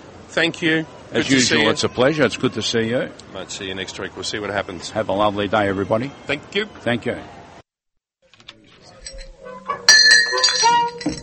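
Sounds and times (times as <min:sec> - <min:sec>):
speech: 0:00.4 - 0:07.4
murmur of voices: 0:00.4 - 0:07.6
drinking glass clinking: 0:09.0 - 0:11.2.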